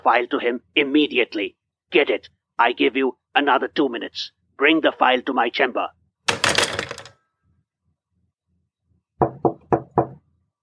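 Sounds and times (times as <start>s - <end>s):
speech: 0.0s - 6.7s
firm knocking on a door: 9.2s - 10.2s.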